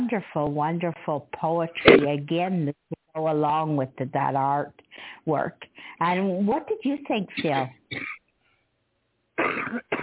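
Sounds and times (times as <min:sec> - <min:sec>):
speech: 0:00.1 - 0:08.2
person coughing: 0:07.4 - 0:08.2, 0:09.4 - 0:10.0.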